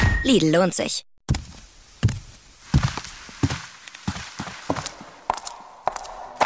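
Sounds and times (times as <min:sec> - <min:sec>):
speech: 0:00.2 - 0:01.5
footsteps walking: 0:01.3 - 0:06.4.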